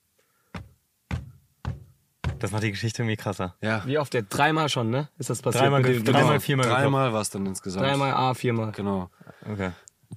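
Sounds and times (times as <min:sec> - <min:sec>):
loud heavy knocking on a solid surface: 0:00.5 - 0:02.7
speech: 0:02.4 - 0:10.1.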